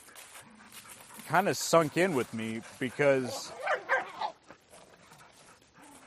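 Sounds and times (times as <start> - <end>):
speech: 1.3 - 3.7
dog barking: 3.5 - 4.4.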